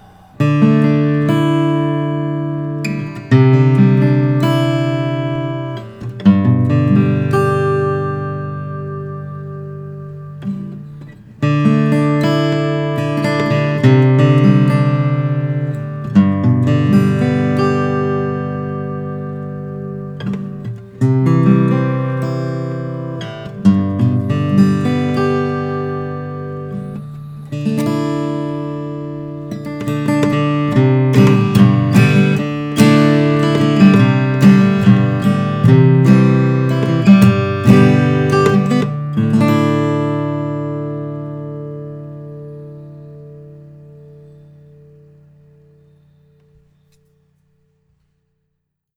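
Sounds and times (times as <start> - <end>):
Martin 00-42 acoustic guitar from 2008: 0.0 - 48.4.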